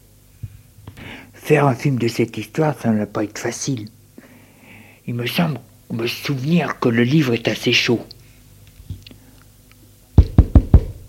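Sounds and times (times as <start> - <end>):
speech: 1.5 - 4.0, 5.1 - 8.2
firm knocking on a door: 10.2 - 11.0.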